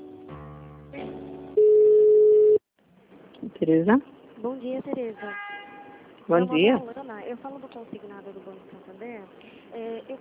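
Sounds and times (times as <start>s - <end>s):
steady telephone tone during a call transfer on an office line: 1.6s - 2.6s
speech: 3.4s - 5.5s, 6.3s - 10.1s.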